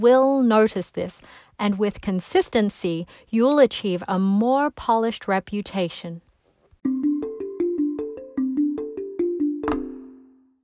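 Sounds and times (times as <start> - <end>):
speech: 0.0 - 7.1
cell phone ringtone melody: 6.9 - 10.4.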